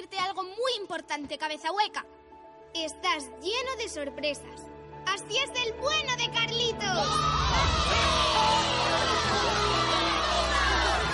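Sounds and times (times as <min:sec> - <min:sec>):
speech: 0:00.8 - 0:09.6
crowd of children cheering and shouting: 0:06.9 - 0:11.1.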